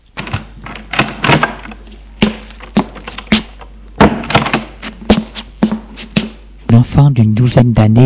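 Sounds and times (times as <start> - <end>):
door opening: 0.0 - 5.9
low steady hum: 0.0 - 8.0
latch rattles: 0.1 - 4.8
sharp wooden thunks and clacks: 0.1 - 6.4
speech: 7.0 - 8.0.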